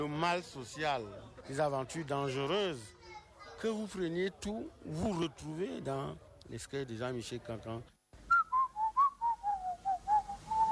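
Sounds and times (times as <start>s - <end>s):
speech: 0.0s - 3.0s, 3.6s - 8.0s
person whistling a quick lilting tune: 8.3s - 10.6s.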